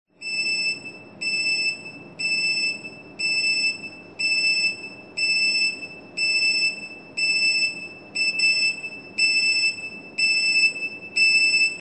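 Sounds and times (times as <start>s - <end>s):
short beeps at short intervals: 0.2s - 11.7s.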